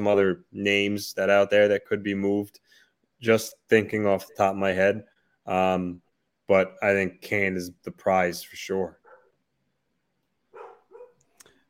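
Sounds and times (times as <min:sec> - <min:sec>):
speech: 0:00.0 - 0:09.0
dog barking: 0:09.0 - 0:09.4, 0:10.5 - 0:11.2
short yip-like sound: 0:10.6 - 0:11.2.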